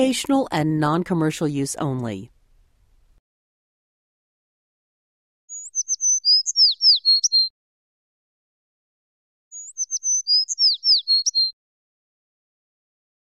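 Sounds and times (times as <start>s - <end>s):
speech: 0.0s - 2.4s
acorn woodpecker calls: 5.5s - 7.5s, 9.6s - 11.5s.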